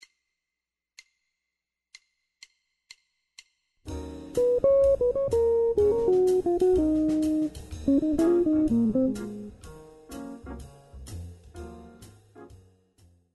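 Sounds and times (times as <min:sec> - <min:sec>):
jazz guitar improvisation: 0:04.4 - 0:10.6.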